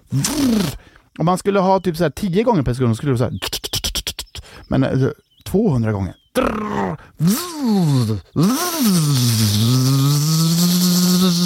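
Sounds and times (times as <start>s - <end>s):
voice imitating insect wings buzzing: 0.0s - 0.8s, 6.4s - 11.4s
speech: 0.1s - 3.7s, 4.7s - 11.4s.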